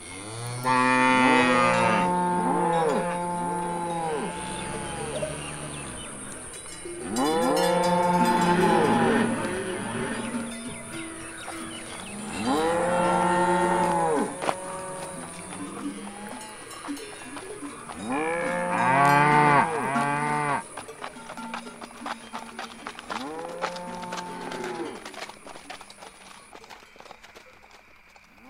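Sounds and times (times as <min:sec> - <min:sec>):
herd of cattle mooing restlessly: 0:00.0 - 0:06.2, 0:07.0 - 0:10.6, 0:12.1 - 0:16.5, 0:18.0 - 0:20.6.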